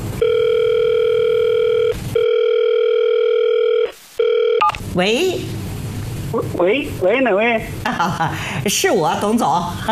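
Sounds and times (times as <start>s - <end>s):
telephone ringing tone while placing a call: 0.2s - 4.8s
speech: 5.0s - 5.6s, 6.3s - 9.9s.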